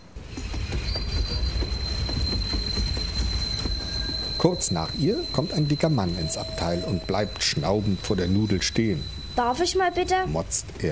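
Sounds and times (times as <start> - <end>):
high metallic train wheel squeal: 0.0 - 10.7
train rumbling on rails heard from inside a compartment: 0.0 - 10.8
speech: 4.4 - 10.8.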